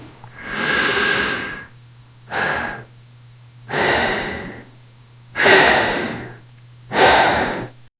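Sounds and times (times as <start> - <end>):
breathing through a gas mask: 0.0 - 2.9, 3.7 - 4.7, 5.4 - 7.8.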